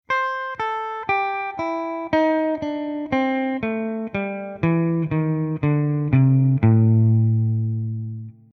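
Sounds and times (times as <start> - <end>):
blues scale in A: 0.1 - 8.5.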